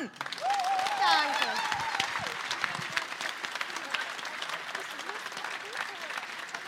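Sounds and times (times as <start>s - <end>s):
applause from a sizable audience: 0.0s - 6.6s
faint voices and cheers in the crowd: 0.0s - 6.6s.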